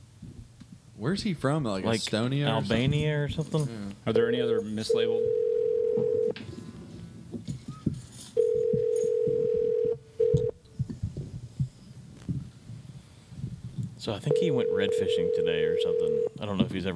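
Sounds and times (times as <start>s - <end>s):
speech: 1.0s - 5.4s, 14.1s - 16.9s
electronic ringback tones of an outgoing phone call: 4.2s - 6.4s, 8.4s - 10.6s, 14.3s - 16.4s.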